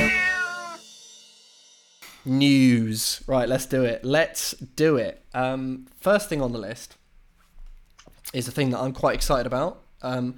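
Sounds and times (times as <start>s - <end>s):
cat meowing: 0.0s - 0.8s
speech: 2.2s - 7.0s, 8.3s - 10.3s.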